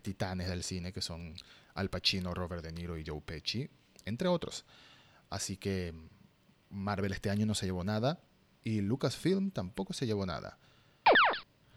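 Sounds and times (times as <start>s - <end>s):
speech: 0.0s - 10.7s
laser zap transition sound effect: 11.1s - 11.4s.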